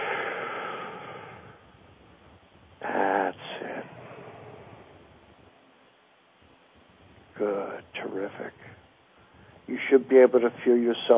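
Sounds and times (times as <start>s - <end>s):
deep breath in during a guided breathing exercise: 0.0s - 2.3s, 3.5s - 5.6s
speech: 7.4s - 8.7s, 9.7s - 11.1s.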